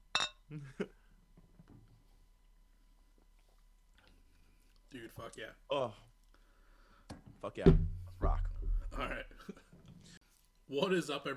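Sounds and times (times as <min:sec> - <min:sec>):
glasses clinking in a toast: 0:00.1 - 0:00.4
speech: 0:00.5 - 0:00.9, 0:05.2 - 0:06.1, 0:07.4 - 0:09.6, 0:10.7 - 0:11.3.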